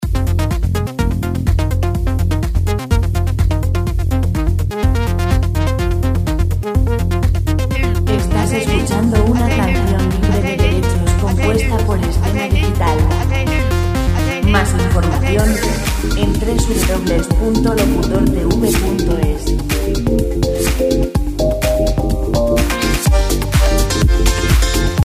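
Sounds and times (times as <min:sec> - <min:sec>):
125 dance background music: 0:00.0 - 0:25.0.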